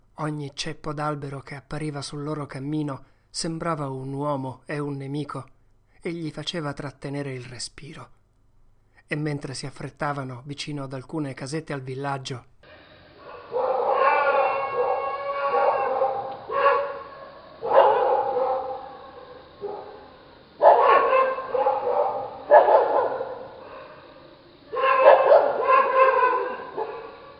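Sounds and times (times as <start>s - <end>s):
speech: 0.2s - 8.2s, 9.1s - 12.5s
awakened guard dogs barking and howling near village cottages: 13.1s - 27.3s.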